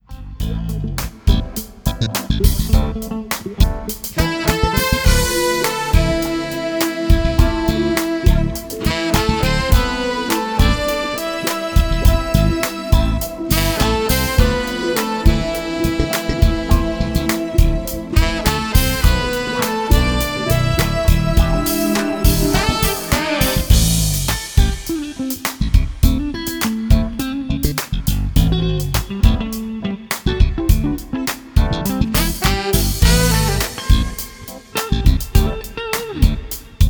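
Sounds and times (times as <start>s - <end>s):
lead guitar in A minor: 0.1s - 27.8s, 28.4s - 36.8s
horns in A minor: 4.0s - 25.1s, 31.6s - 35.2s.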